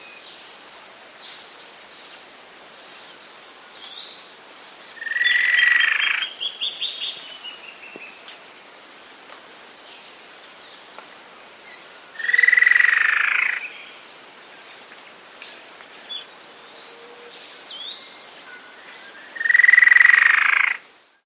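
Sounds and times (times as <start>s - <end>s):
Spot-Backed Antwren in South America: 4.9s - 8.3s, 11.7s - 14.0s, 16.0s - 20.8s.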